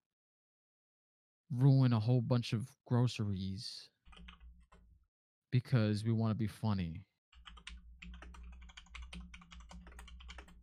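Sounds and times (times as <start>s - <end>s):
speech: 1.5s - 4.3s, 5.5s - 7.1s
fast typing on a computer keyboard: 4.1s - 4.8s, 7.4s - 10.6s.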